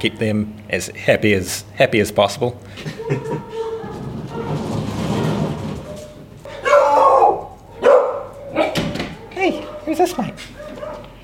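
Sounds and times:
speech: 0.0s - 3.6s, 10.0s - 10.6s
laughter: 2.7s - 4.0s
dog barking at a kennel: 2.9s - 4.6s, 5.9s - 11.1s.

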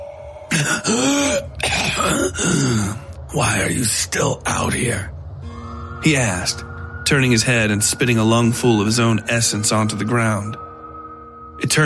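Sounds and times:
man clearing his throat: 0.5s - 3.0s
speech: 0.6s - 5.1s, 6.0s - 10.6s, 11.6s - 11.8s.

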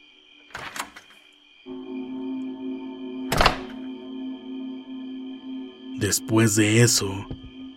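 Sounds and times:
front door opening: 0.4s - 1.3s, 3.2s - 4.0s
low steady hum: 1.7s - 7.7s
speech: 6.0s - 7.5s.

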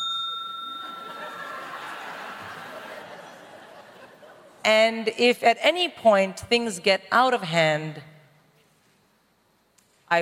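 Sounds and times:
single bright bell ringing at a debate: 0.0s - 3.0s
laughter: 0.7s - 4.6s
speech: 4.7s - 8.1s.

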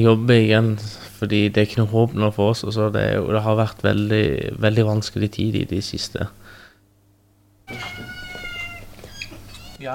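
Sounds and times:
speech: 0.0s - 6.4s
cats meowing while sniffing after food on a stove: 7.7s - 9.9s.

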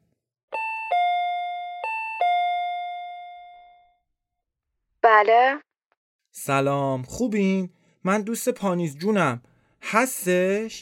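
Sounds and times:
apartment entrance intercom doorbell chiming a two-tone ding-dong: 0.6s - 3.8s
speech: 5.2s - 5.7s, 6.4s - 10.8s.

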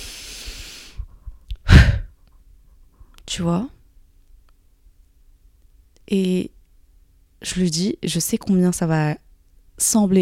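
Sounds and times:
person letting a deep breath out all at once: 0.0s - 1.1s
person taking a deep breath in: 0.0s - 2.1s
speech: 3.4s - 3.8s, 6.1s - 6.6s, 7.4s - 9.2s, 9.8s - 10.2s.

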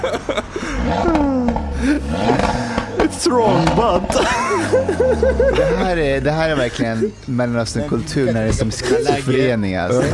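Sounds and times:
speech: 0.0s - 2.6s, 3.2s - 10.1s
laughter: 0.0s - 10.1s
sports car exhaust crackles: 0.5s - 7.1s
sports car engine revving hard: 0.6s - 7.1s.

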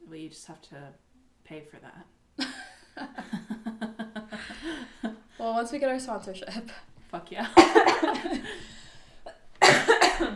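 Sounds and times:
speech: 0.1s - 3.6s, 5.4s - 8.8s
person coughing: 7.6s - 8.6s, 9.6s - 10.3s.

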